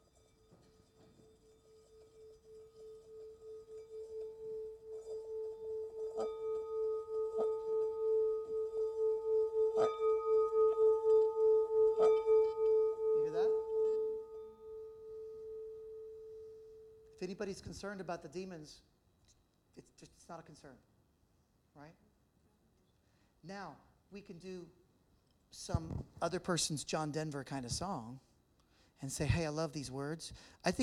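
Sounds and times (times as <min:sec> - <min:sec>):
singing bowl struck and rim rubbed: 0:00.0 - 0:17.7
speech: 0:17.3 - 0:18.9, 0:20.0 - 0:20.9, 0:21.8 - 0:22.0, 0:23.4 - 0:24.8, 0:25.5 - 0:28.3, 0:29.0 - 0:30.8.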